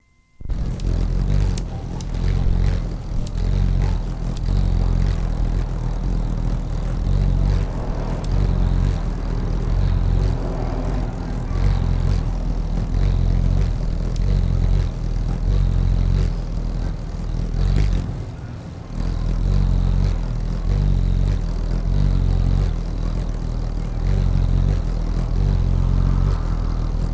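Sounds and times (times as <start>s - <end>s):
hummingbird: 0.4s - 27.1s.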